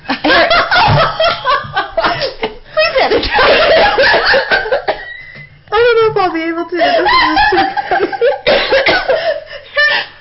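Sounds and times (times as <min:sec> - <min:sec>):
laughter: 0:00.1 - 0:05.4, 0:06.8 - 0:10.1
person coughing: 0:08.5 - 0:09.4.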